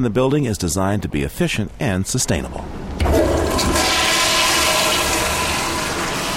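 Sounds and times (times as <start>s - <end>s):
speech: 0.0s - 3.8s
toilet flushing in a sustainable building: 3.0s - 6.3s.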